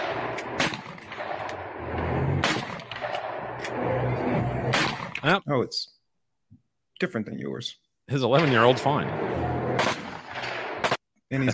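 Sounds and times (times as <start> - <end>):
gunshots as an 11-year-old fires a gun: 0.0 - 5.4, 8.3 - 11.0
steady rumbling background: 0.0 - 5.4, 8.3 - 11.0
speech: 5.2 - 6.0, 7.0 - 9.5, 11.3 - 11.5.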